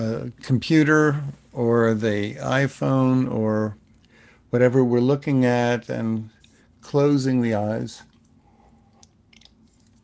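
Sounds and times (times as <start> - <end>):
speech: 0.0 - 3.8, 4.5 - 8.1
low steady hum: 0.0 - 10.0
wet mouth clicks: 8.1 - 10.0.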